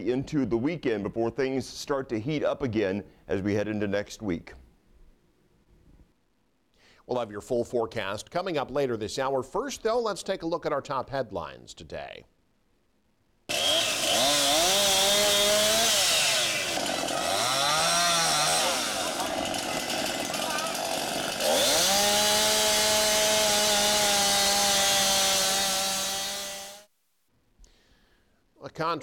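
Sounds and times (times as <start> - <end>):
speech: 0.0 - 4.6, 7.1 - 12.3, 28.8 - 29.0
chainsaws roaring at full throttle cutting old wind-damaged trees: 13.5 - 26.9.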